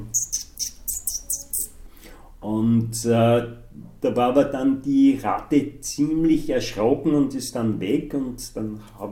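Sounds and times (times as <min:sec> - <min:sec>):
person imitating bird chirping with mouth to get a rat's attention: 0:00.0 - 0:01.8
speech: 0:02.4 - 0:09.1.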